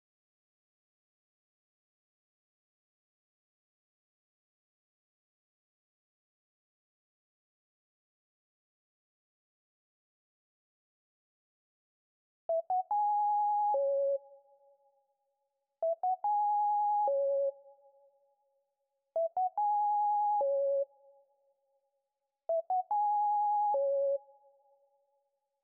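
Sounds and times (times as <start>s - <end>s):
sine synth melody loop in C sharp minor: 12.5s - 14.4s, 15.8s - 17.7s, 19.2s - 21.0s, 22.5s - 24.4s.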